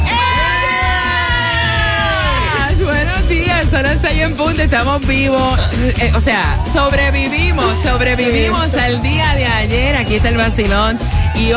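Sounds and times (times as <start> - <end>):
several people screaming and yelling in a studio: 0.0 - 3.1, 5.8 - 11.5
speech: 3.7 - 11.5.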